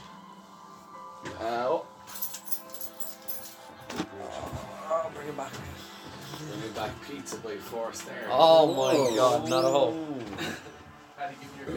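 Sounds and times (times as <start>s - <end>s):
keys jangling and clinking: 2.1s - 3.8s
speech: 6.6s - 10.7s, 11.3s - 11.7s.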